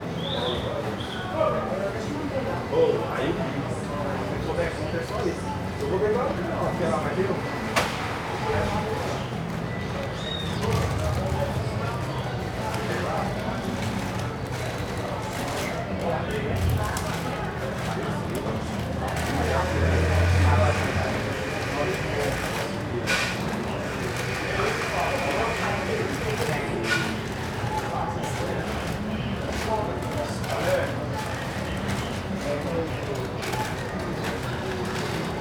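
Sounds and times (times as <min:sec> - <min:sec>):
crowd of people at a market: 0:00.0 - 0:35.4
men picking up packaging: 0:09.4 - 0:35.4.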